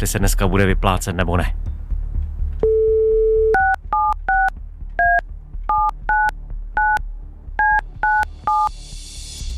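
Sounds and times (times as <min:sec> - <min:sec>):
speech: 0:00.0 - 0:01.7
brief steady dial tone: 0:02.6 - 0:04.5
crisp DTMF touch-tone beeps dialing a phone number in a radio studio: 0:02.6 - 0:07.0, 0:07.6 - 0:08.7.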